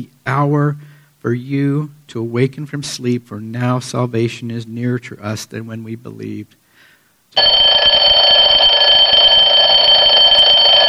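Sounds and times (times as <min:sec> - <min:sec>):
speech: 0:00.0 - 0:06.6, 0:07.3 - 0:08.2
alarm clock ringing with a shrill electronic tone: 0:07.4 - 0:10.8.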